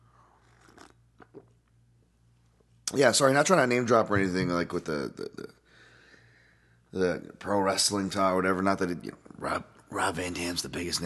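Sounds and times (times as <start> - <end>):
low steady hum: 0.0 - 11.0
person sipping hot coffee from a mug: 0.4 - 1.6
speech: 2.9 - 5.6, 6.9 - 11.0.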